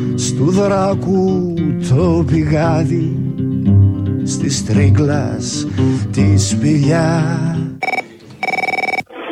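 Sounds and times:
speech: 0.2 - 3.2, 4.3 - 7.7
electronic telephone ringing in warbling trilled bursts: 7.8 - 9.1.

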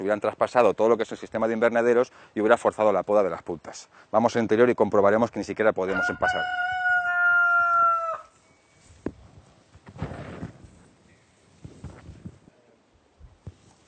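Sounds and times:
speech: 0.0 - 6.8
rooster crowing inside a cannabis greenhouse: 5.9 - 8.4
rustling: 8.2 - 12.6, 13.2 - 13.8.

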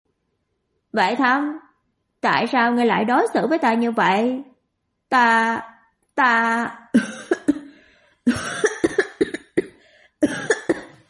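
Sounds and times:
speech: 0.9 - 1.6, 2.2 - 4.5, 5.1 - 7.3, 8.2 - 8.7
violent dry coughing: 7.0 - 11.0.

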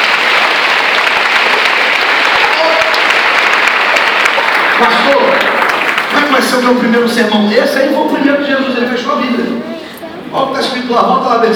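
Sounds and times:
church congregation applauding: 0.0 - 7.3
speech: 6.4 - 9.6, 10.3 - 11.5.

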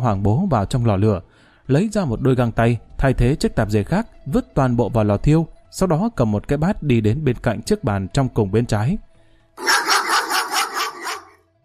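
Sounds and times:
speech: 0.0 - 9.1
four dogs tied to a tree barking: 9.6 - 11.4.

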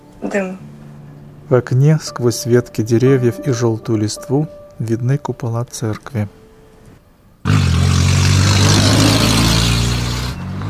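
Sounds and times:
speech: 0.2 - 0.7, 1.5 - 6.4
minibus engine roaring while racing through small-town streets: 7.4 - 10.6.

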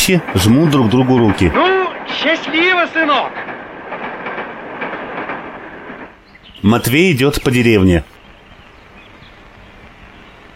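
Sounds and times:
speech: 0.0 - 3.5, 6.6 - 8.1
train wheels clickety-clack over rail joints: 0.0 - 6.2
railway carriage rolling on the rails, heard from the train vestibule: 0.0 - 8.0.

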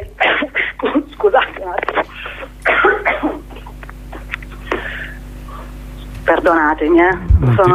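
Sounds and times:
person with a lingering cough coughing harshly: 0.2 - 5.0
speech: 6.3 - 7.7
throat sounds: 7.2 - 7.7.

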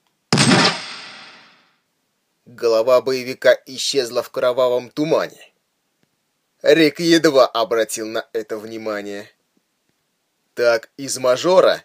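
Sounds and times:
rifle gunshot: 0.3 - 1.6
speech: 2.5 - 5.5, 6.6 - 9.4, 10.6 - 11.8.

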